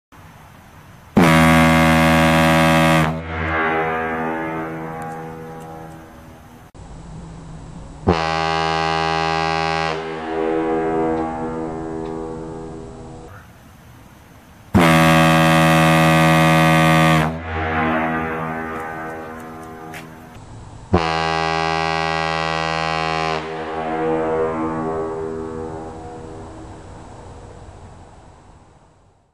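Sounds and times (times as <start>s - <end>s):
ship siren: 1.2s - 6.7s, 8.0s - 13.3s, 14.8s - 20.4s, 21.0s - 27.8s.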